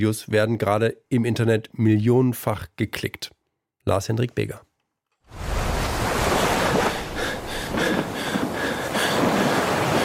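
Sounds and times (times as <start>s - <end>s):
speech: 0.0s - 4.7s
ocean waves roaring in the open sea: 5.3s - 10.0s.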